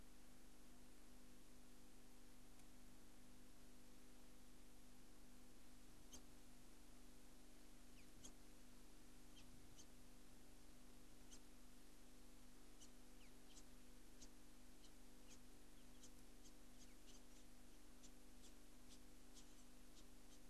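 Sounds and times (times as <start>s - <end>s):
steady low hum: 0.0s - 20.4s
Yellow-tufted Honeyeater calls at Girraween: 12.8s - 20.4s.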